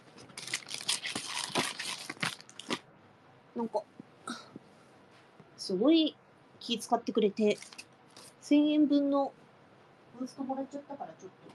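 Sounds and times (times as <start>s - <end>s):
paper crinkling and rustling while wrapping a package: 0.2s - 2.8s, 7.5s - 8.4s
masking tape ripping: 0.4s - 2.8s
speech: 3.6s - 4.4s, 5.6s - 7.7s, 8.5s - 9.4s, 10.2s - 11.5s.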